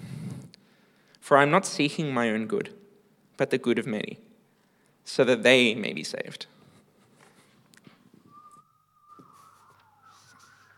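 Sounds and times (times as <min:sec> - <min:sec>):
speech: 0:01.3 - 0:02.8, 0:03.4 - 0:04.3, 0:05.0 - 0:06.6
long steady whistled note: 0:08.1 - 0:10.7.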